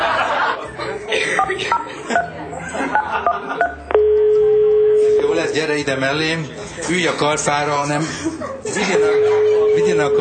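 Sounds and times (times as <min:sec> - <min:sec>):
laughter: 0:00.0 - 0:03.9, 0:07.8 - 0:10.1
short touch-tone beeps of a phone number being keyed in: 0:02.9 - 0:05.4, 0:09.0 - 0:10.1
steady telephone tone: 0:03.9 - 0:05.3
speech: 0:05.6 - 0:10.1.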